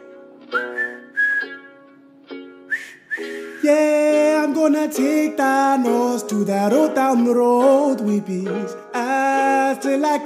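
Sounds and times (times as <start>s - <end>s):
whistled Western-style melody: 0.0s - 10.2s
speech: 4.6s - 8.8s, 9.7s - 10.2s.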